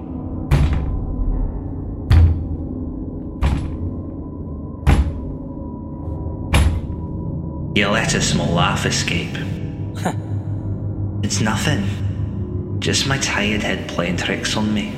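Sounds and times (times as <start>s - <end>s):
steady low hum: 0.0s - 14.9s
solid knocks on a door: 2.1s - 2.5s, 4.9s - 5.3s
speech: 7.8s - 10.2s, 11.2s - 12.1s, 12.8s - 14.9s.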